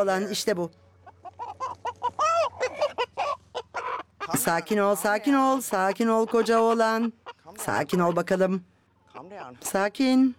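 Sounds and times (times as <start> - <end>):
speech: 0.0 - 0.9, 4.3 - 10.3
chicken clucking: 1.0 - 9.8.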